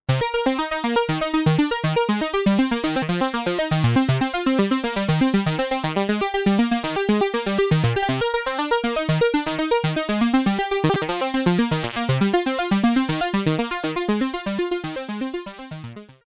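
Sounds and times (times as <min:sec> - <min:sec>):
Kobol synthesizer envelope modulation with no patch cords: 0:00.1 - 0:16.2.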